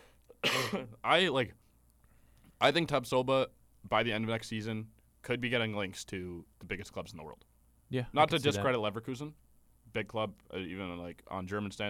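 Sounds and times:
harsh breathy cough with throaty rasp: 0.3s - 1.0s
speech: 0.7s - 1.6s, 2.6s - 11.8s.

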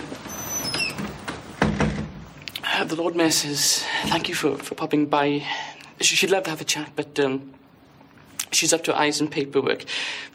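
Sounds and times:
door creaking open with a high squeak: 0.0s - 2.4s
speech: 2.8s - 7.6s, 8.5s - 10.3s.

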